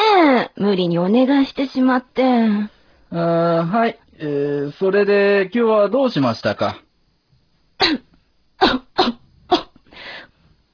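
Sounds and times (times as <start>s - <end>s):
speech: 0.6s - 6.8s, 7.8s - 9.2s
person coughing harshly: 7.8s - 9.8s.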